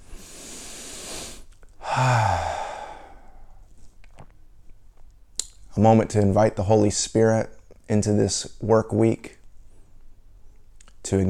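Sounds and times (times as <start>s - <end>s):
deep breath in and out: 0.0s - 3.7s
speech: 2.0s - 2.4s, 5.8s - 9.4s, 11.1s - 11.2s.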